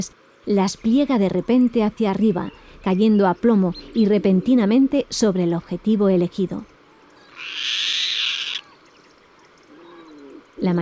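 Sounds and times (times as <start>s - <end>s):
speech: 0.0s - 6.7s, 10.6s - 10.8s
harsh hissing bird call in the morning: 7.2s - 8.8s.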